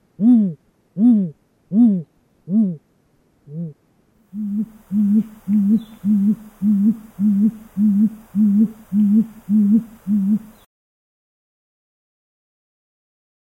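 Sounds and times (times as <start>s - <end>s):
faint hiss: 0.0s - 10.7s
Great Gray Owl hooting: 0.2s - 2.8s, 3.5s - 10.7s.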